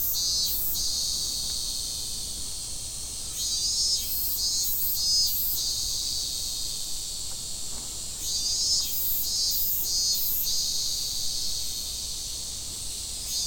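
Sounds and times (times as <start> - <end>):
cicada song in Fukushima: 0.0 - 13.4.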